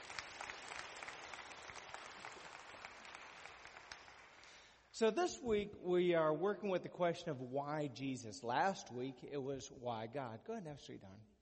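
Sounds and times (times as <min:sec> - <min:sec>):
audience applause at a church worship service: 0:00.0 - 0:04.7
speech: 0:05.0 - 0:11.3.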